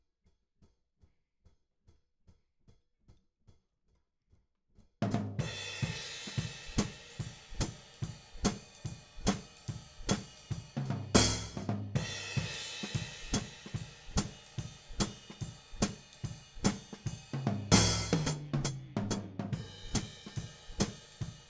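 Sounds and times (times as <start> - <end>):
hi-hat: 5.1 - 21.4.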